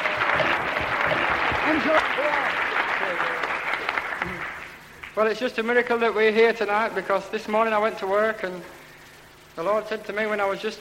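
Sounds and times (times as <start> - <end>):
audience applause: 0.0 - 5.2
speech: 1.9 - 3.3, 5.2 - 8.8, 9.6 - 10.7.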